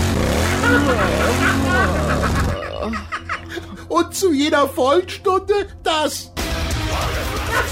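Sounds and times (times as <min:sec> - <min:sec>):
motorcycle engine sound revving from a motorcycle-shaped novelty wall clock: 0:00.0 - 0:02.8
laughter: 0:00.3 - 0:03.9, 0:07.0 - 0:07.7
speech: 0:02.8 - 0:03.2, 0:03.9 - 0:06.3.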